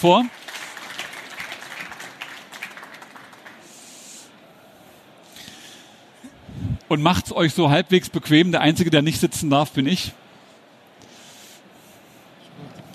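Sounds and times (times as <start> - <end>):
speech: 0.0 - 0.4, 6.9 - 10.2
crowd clapping: 0.0 - 4.0.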